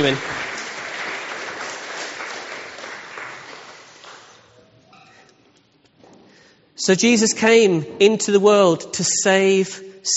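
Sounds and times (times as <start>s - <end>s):
speech: 0.0s - 0.4s, 6.8s - 10.1s
crowd clapping: 0.0s - 4.6s.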